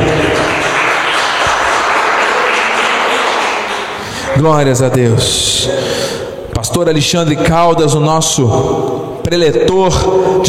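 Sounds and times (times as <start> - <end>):
audience applause: 0.0 - 4.4
speech: 4.4 - 10.4.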